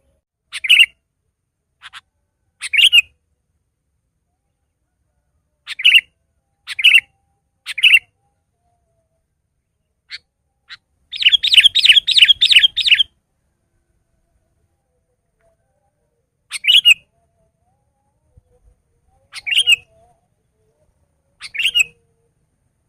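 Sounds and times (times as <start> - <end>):
Sooty-headed bulbul song of short bubbly phrases: 0.0 - 1.0, 5.7 - 6.1, 6.7 - 7.1, 7.7 - 8.2, 9.9 - 13.1, 16.5 - 17.3, 19.1 - 22.3.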